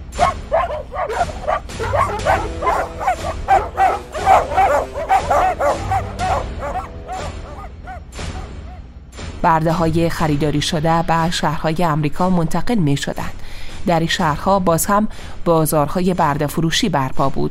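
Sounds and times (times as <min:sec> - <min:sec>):
several dogs barking excitedly while chasing people along a shore: 0:00.2 - 0:08.8
whiny high-pitched dog cries: 0:00.2 - 0:08.8
speech: 0:09.6 - 0:17.4.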